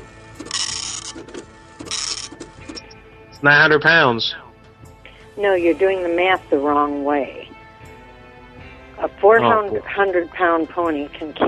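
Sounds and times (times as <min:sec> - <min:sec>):
dot matrix printer printing: 0:00.4 - 0:02.8
speech: 0:03.4 - 0:04.4, 0:05.4 - 0:07.6, 0:09.0 - 0:11.4.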